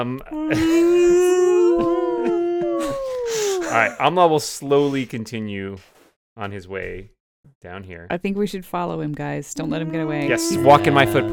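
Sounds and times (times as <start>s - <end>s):
speech: 0.0s - 1.9s, 3.7s - 11.3s
long tormented wailing howl: 0.4s - 3.9s, 9.6s - 11.3s.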